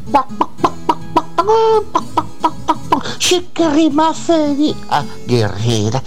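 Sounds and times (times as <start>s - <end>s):
chicken clucking: 0.0s - 3.1s
speech: 0.1s - 0.8s, 1.4s - 6.0s.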